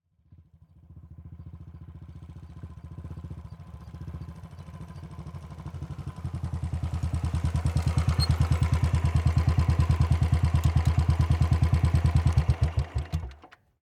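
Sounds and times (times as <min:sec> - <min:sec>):
Royal Enfield Bullet Classic 350 motorcycle approaching very slowly and idling: 0:00.1 - 0:13.6
Royal Enfield Bullet Classic 350 motorcycle squeak: 0:07.7 - 0:08.9.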